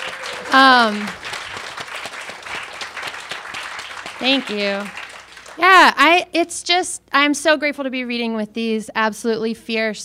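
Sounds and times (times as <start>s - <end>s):
crowd applauding: 0.0s - 5.9s
speech: 0.5s - 1.2s, 4.2s - 5.0s, 5.6s - 10.0s.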